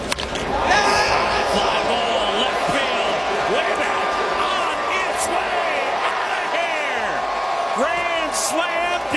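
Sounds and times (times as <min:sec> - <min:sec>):
big stadium crowd cheering: 0:00.0 - 0:09.1
man yelling into a microphone: 0:00.7 - 0:09.1.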